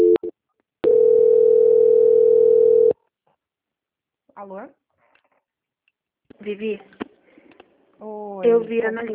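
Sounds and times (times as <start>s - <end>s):
telephone line beeps during a call transfer: 0.0s - 2.9s
speech: 4.4s - 4.8s, 6.4s - 7.0s, 8.0s - 9.1s.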